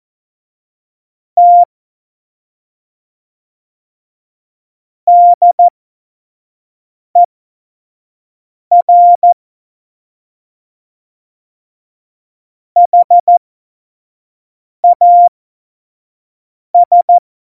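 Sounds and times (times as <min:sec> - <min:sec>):
Morse code practice tones at speed 25: 0:01.4 - 0:01.7, 0:05.2 - 0:05.7, 0:08.8 - 0:09.3, 0:12.9 - 0:13.3, 0:14.9 - 0:15.3, 0:16.8 - 0:17.2.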